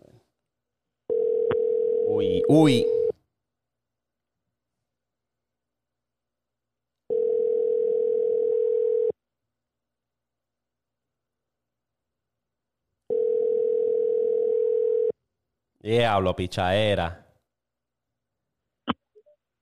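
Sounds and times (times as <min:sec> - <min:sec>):
outgoing phone call ringback tone: 0:01.1 - 0:03.1, 0:07.1 - 0:09.1, 0:13.1 - 0:15.1
speech: 0:02.2 - 0:03.0, 0:15.9 - 0:17.2.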